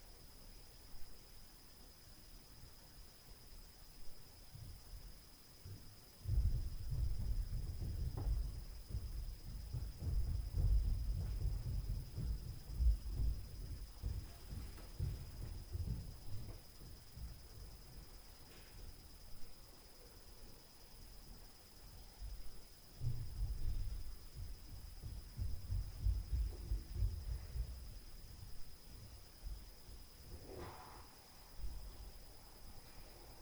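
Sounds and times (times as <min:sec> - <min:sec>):
stairs noise at night: 0:05.6 - 0:18.2, 0:23.0 - 0:32.2.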